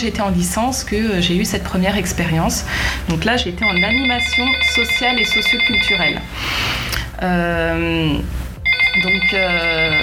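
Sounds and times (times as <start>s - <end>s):
speech: 0.0s - 8.4s, 9.0s - 10.0s
phone playing a bright electronic musical ringtone: 3.6s - 6.3s, 8.6s - 10.0s.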